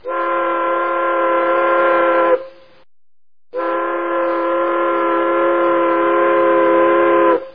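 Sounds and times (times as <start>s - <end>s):
long horn blasts: 0.0s - 2.7s, 3.5s - 7.5s.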